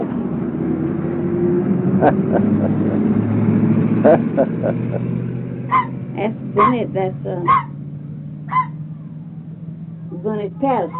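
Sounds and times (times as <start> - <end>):
old school bus brakes squeaking: 0.0 - 10.9
old school bus engine idling: 0.0 - 10.9
laughter: 2.0 - 3.3, 4.0 - 5.1
speech: 2.0 - 7.7, 10.2 - 10.9.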